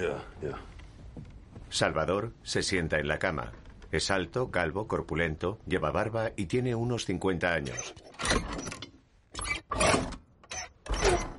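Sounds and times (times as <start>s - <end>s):
speech: 0.0s - 0.7s, 1.7s - 8.5s
cabin door opening with mechanical scraping and rattling at night: 7.7s - 11.3s.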